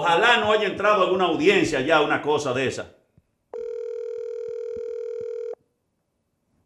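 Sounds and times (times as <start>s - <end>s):
speech: 0.0s - 3.0s
telephone ringing tone during an outgoing call: 3.5s - 5.6s.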